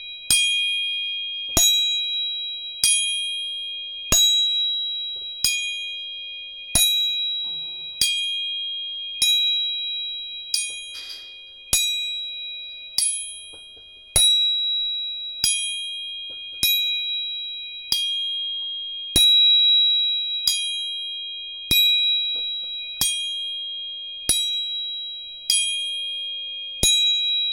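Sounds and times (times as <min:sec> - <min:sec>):
three tuning forks struck and ringing: 0:00.0 - 0:27.5.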